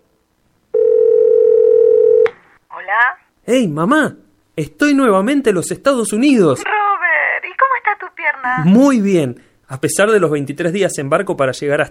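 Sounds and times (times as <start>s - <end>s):
telephone dial tone on a call placed from Seattle: 0.8s - 2.3s
speech: 3.1s - 6.8s, 8.4s - 11.8s.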